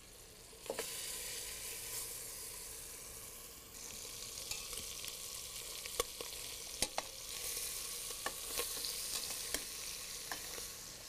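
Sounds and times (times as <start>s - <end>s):
veal shanks browning in butter in a pot: 0.0s - 11.0s
sharp crackles and pops of veal shanks browning in butter: 3.8s - 11.0s.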